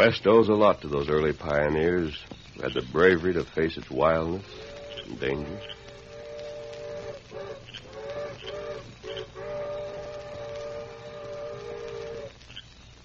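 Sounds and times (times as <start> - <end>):
speech: 0.0 - 5.8
low rumble: 0.0 - 13.0
distant steam train whistle: 4.4 - 12.4.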